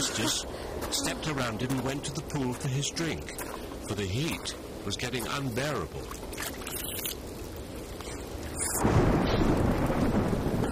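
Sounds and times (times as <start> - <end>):
speech: 0.0 - 6.8
steady rain: 0.0 - 10.7
deep rumble of thunder: 8.7 - 10.7.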